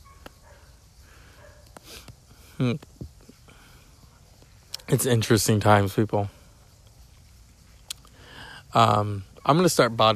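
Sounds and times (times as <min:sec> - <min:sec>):
dog giving a loud sharp bark: 0:00.0 - 0:00.8, 0:01.4 - 0:01.7
speech: 0:02.6 - 0:03.0, 0:04.9 - 0:06.4, 0:08.8 - 0:10.1.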